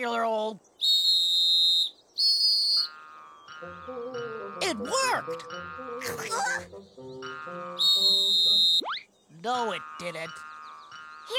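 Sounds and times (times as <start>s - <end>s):
speech: 0.0s - 1.0s, 3.6s - 10.5s
shrill whistle blasts: 0.8s - 2.9s, 7.8s - 9.0s.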